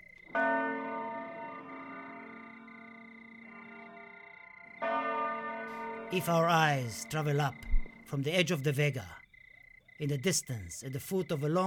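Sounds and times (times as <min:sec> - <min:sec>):
church bells ringing at night: 0:00.2 - 0:07.6
speech: 0:06.1 - 0:09.2, 0:10.0 - 0:11.6.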